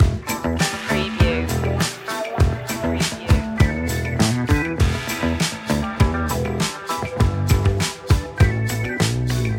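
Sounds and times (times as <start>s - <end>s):
funk music loop: 0.0s - 9.5s.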